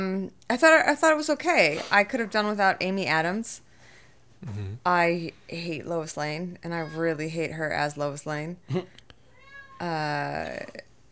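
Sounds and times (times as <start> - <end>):
speech: 0.0 - 3.6, 4.4 - 9.0, 9.8 - 10.9
cat meowing loudly: 9.3 - 10.6.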